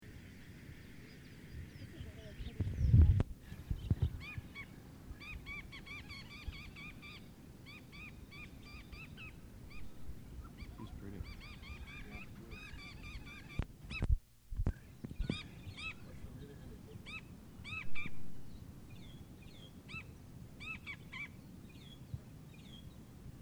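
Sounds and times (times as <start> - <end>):
birds singing: 0.2 - 23.2.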